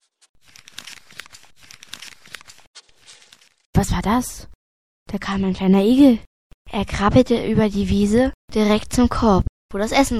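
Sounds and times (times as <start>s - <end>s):
crackly rustling in the bushes: 0.4s - 3.6s
speech: 3.8s - 4.5s, 5.1s - 10.1s.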